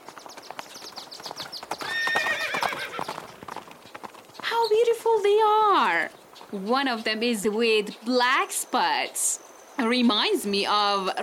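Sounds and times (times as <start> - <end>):
several horses' hooves clip-clopping: 0.0 - 8.6
horse letting out a loud quavering whinny: 1.8 - 3.2
speech: 5.1 - 11.2.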